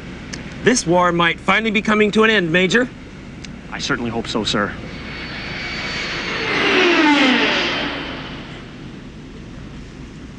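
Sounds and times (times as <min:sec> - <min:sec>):
speech: 0:00.6 - 0:03.0, 0:03.7 - 0:04.9
aircraft flying past at high speed: 0:03.8 - 0:09.3.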